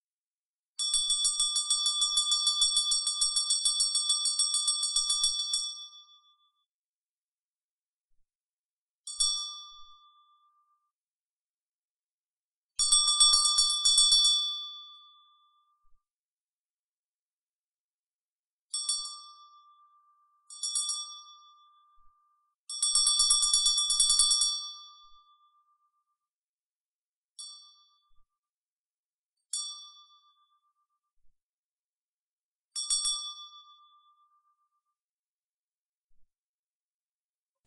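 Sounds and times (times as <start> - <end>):
bell: 0.8 - 6.8, 9.1 - 11.0, 12.8 - 16.2, 18.7 - 26.4, 27.3 - 28.5, 29.4 - 31.4, 32.7 - 35.1.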